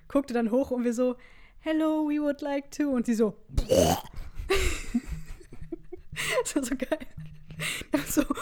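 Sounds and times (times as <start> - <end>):
speech: 0.1 - 4.8, 6.4 - 8.4
person imitating a loud croaky burp: 3.6 - 4.3.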